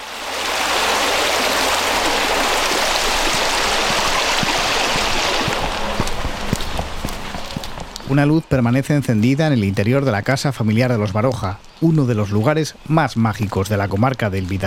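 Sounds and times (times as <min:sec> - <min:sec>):
swollen stream rushing after days of rain: 0:00.0 - 0:08.4
knocking and splashing: 0:01.7 - 0:08.0
speech: 0:08.1 - 0:14.6.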